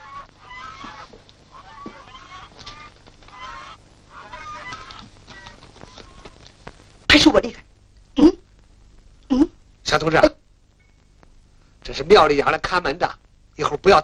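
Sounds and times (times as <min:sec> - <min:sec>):
geese honking: 0:00.0 - 0:06.5
steady hiss: 0:00.0 - 0:14.0
speech: 0:07.2 - 0:07.6, 0:09.9 - 0:10.3, 0:12.0 - 0:14.0.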